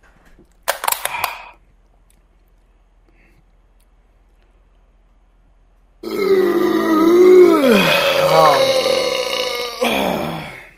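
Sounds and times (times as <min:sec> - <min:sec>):
long loud belch after shotgunning a beer: 0:06.0 - 0:10.7.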